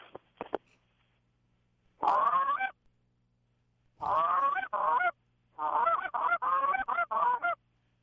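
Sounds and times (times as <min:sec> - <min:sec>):
loud high-pitched goose hail calls blown on a goose call: 0:04.0 - 0:07.6.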